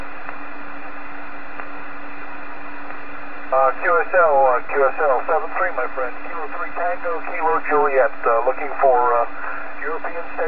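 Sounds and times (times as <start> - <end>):
low hum: 0.0 - 10.4
heavy radio static from an electrical storm: 3.5 - 10.4
speech: 3.7 - 10.4.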